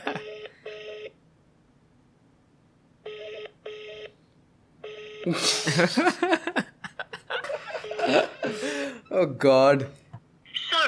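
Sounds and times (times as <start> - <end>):
unanswered telephone ringing tone in double bursts: 0.1 - 1.2, 3.0 - 4.2, 4.8 - 5.3
speech: 5.2 - 6.4, 8.1 - 10.0
laughter: 5.3 - 8.8.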